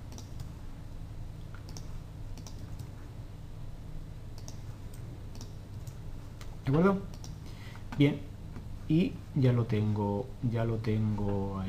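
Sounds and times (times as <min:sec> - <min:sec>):
steady low hum of noise: 0:00.0 - 0:11.6
computer mouse clicks: 0:00.1 - 0:00.5, 0:01.5 - 0:02.9, 0:04.4 - 0:06.5, 0:07.1 - 0:07.4
speech: 0:06.7 - 0:07.2, 0:08.0 - 0:08.3, 0:08.9 - 0:11.6.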